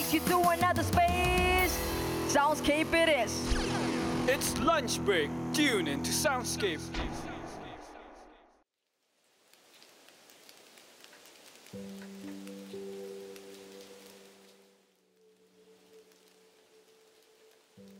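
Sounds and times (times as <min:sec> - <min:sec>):
speech: 0:00.1 - 0:07.2
steady rain falling outside a window: 0:09.0 - 0:17.9.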